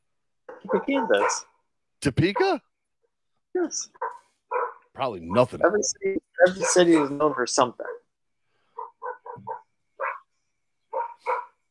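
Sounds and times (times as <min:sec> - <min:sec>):
small dogs barking: 0:00.5 - 0:01.6, 0:02.2 - 0:02.6, 0:03.9 - 0:05.7, 0:06.4 - 0:08.1, 0:08.7 - 0:11.6
speech: 0:00.7 - 0:02.7, 0:03.6 - 0:04.1, 0:05.0 - 0:08.0.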